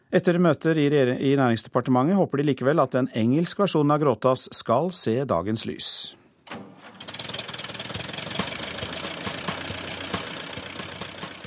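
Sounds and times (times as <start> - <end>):
speech: 0.1 - 6.7
small tractor engine starting and chugging at idle: 6.8 - 11.4.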